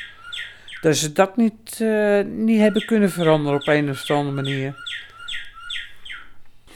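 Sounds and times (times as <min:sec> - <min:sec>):
chiming bird clock playing a bird call: 0:00.0 - 0:01.5, 0:02.4 - 0:06.4
speech: 0:00.8 - 0:04.9.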